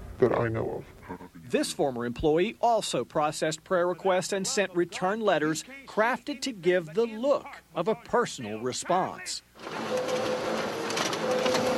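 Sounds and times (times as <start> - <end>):
speech: 0.2 - 10.0
new high-tech printer printing a document: 8.9 - 11.7.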